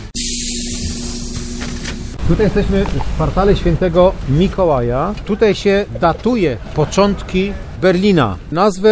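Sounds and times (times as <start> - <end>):
tour bus air brakes releasing: 0.2 - 2.2
tour bus engine idling in Berlin: 0.2 - 8.6
speech: 2.3 - 8.9.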